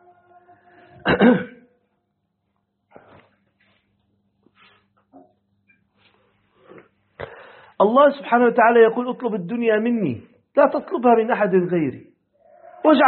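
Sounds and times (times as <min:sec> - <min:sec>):
speech: 0:01.0 - 0:01.5, 0:07.8 - 0:12.1, 0:12.8 - 0:13.0
rough cough from an inflamed sore throat: 0:01.0 - 0:01.7.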